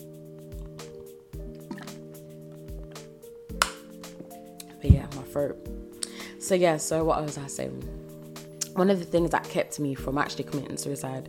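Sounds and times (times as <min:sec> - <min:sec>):
person drinking water with soft wet gulps: 0:00.6 - 0:02.2
speech: 0:04.8 - 0:05.8, 0:06.4 - 0:08.0, 0:08.8 - 0:11.2.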